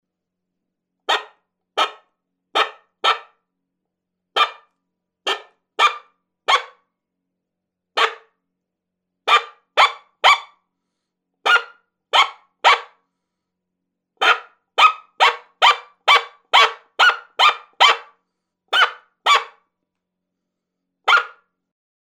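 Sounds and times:
coyote barking: 0:01.1 - 0:03.4, 0:04.4 - 0:06.8, 0:08.0 - 0:08.3, 0:09.3 - 0:10.6, 0:11.4 - 0:13.0, 0:14.2 - 0:19.6, 0:21.1 - 0:21.4.

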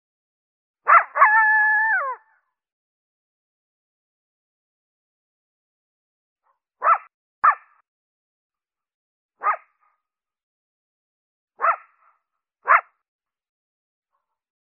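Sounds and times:
coyote giving short sharp barks: 0:00.8 - 0:01.8, 0:06.8 - 0:07.8, 0:09.4 - 0:09.7, 0:11.6 - 0:12.0, 0:12.6 - 0:13.0
coyote howling: 0:00.9 - 0:02.2.

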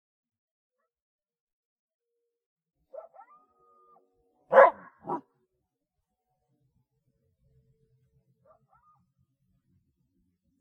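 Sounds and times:
coyote barks: 0:02.9 - 0:03.5, 0:04.5 - 0:05.2
faint coyote yips: 0:02.9 - 0:05.2, 0:08.5 - 0:09.0.

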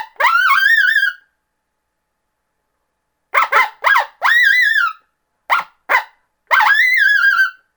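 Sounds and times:
coyote yipping and howling: 0:00.0 - 0:01.3, 0:03.4 - 0:07.6.

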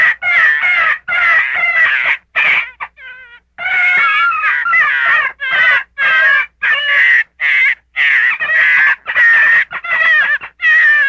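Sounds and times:
gray fox whining: 0:00.0 - 0:11.0.

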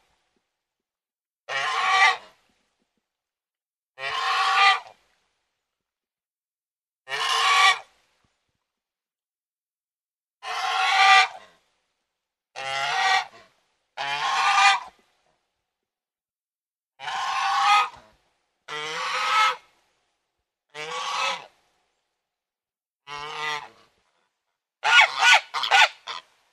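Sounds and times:
domestic goose giving rasping honks: 0:01.5 - 0:02.3, 0:04.0 - 0:04.9, 0:07.1 - 0:07.9, 0:10.4 - 0:11.4, 0:12.6 - 0:13.4, 0:14.0 - 0:14.9, 0:17.0 - 0:18.0, 0:18.7 - 0:19.6, 0:20.8 - 0:21.5, 0:23.1 - 0:23.7, 0:24.8 - 0:26.2.

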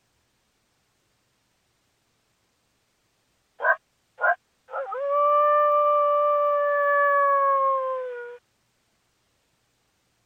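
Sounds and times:
coyote bark: 0:03.6 - 0:05.0
coyote howl linked to mating: 0:03.6 - 0:08.4.

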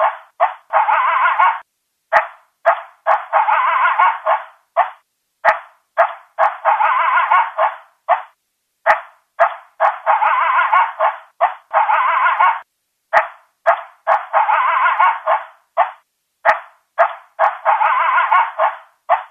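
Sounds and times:
coyote barking and yelping: 0:00.0 - 0:19.2.

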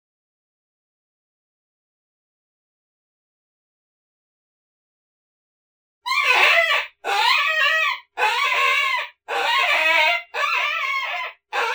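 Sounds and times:
coyote pups giving harsh wavering yelping cries: 0:06.1 - 0:11.7.

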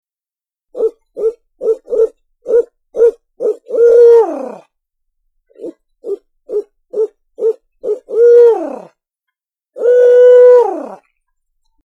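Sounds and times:
owl hooting: 0:00.8 - 0:04.6, 0:05.6 - 0:08.9, 0:09.8 - 0:11.0.

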